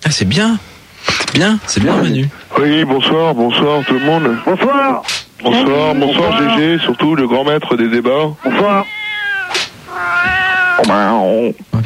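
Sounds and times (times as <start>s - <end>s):
speech: 0.1s - 9.0s, 10.8s - 11.8s
cat meowing loudly into a plaintive yowl: 3.5s - 7.1s, 8.4s - 11.4s.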